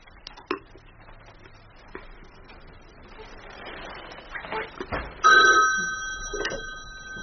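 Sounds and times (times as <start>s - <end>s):
telephone ringing at a retirement home's switchboard: 5.2s - 7.2s.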